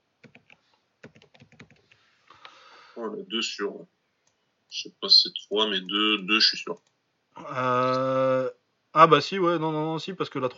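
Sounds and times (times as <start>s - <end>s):
faint typing on a computer keyboard: 0.2s - 2.0s
speech: 3.0s - 4.0s, 4.7s - 10.5s.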